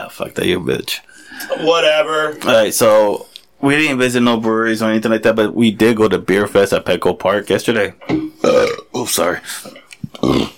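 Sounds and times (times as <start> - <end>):
speech: 0.1 - 8.3, 9.0 - 10.5
loud drawn-out burp: 8.0 - 9.0, 10.1 - 10.5.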